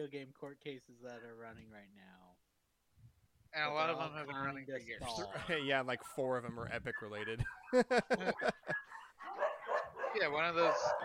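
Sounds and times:
speech: 0.0 - 2.5, 3.5 - 9.4, 10.1 - 11.0
laughter: 5.0 - 6.0, 7.2 - 9.2
dogs barking: 6.9 - 11.0.

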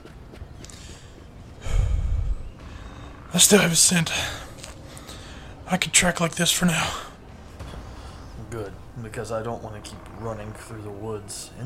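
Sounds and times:
heavy breathy exhale: 1.6 - 3.1
speech: 3.3 - 4.4, 5.7 - 7.1, 8.6 - 11.6.

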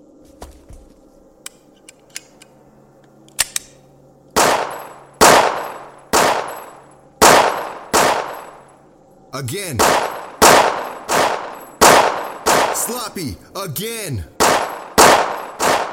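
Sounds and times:
gunshots from a weapon fired during a shooting drill: 4.4 - 8.6, 9.4 - 15.9
speech: 9.4 - 10.1, 12.8 - 14.4.

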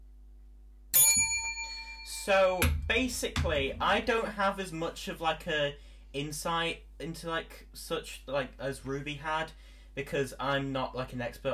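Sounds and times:
bell ringing with a shimmering metallic tone: 1.0 - 2.7
speech: 2.1 - 11.5.

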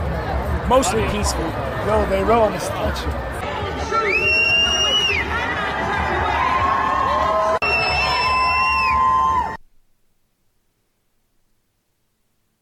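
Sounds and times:
speech: 0.7 - 3.4, 4.1 - 4.5
large protest crowd roaring, screaming and chanting: 3.4 - 9.6.

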